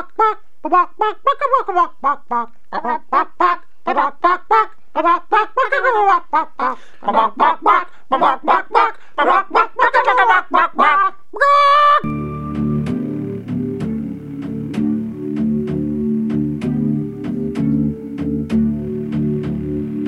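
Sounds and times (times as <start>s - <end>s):
chicken clucking: 0.0s - 12.0s
sustained tone: 12.0s - 20.0s.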